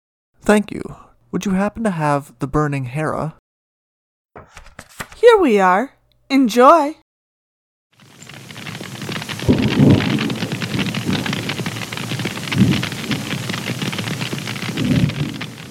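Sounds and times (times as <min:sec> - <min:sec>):
speech: 0:00.5 - 0:03.4, 0:04.4 - 0:04.7, 0:05.3 - 0:07.0
heavy rain: 0:08.0 - 0:15.6
thunder rumbling: 0:08.0 - 0:15.6.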